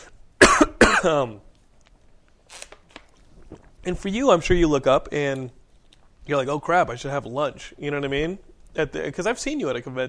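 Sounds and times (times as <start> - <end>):
coughing trailing into a raspy throat sound: 0.0 - 1.4
speech: 1.0 - 1.5, 3.8 - 5.6, 6.3 - 10.0.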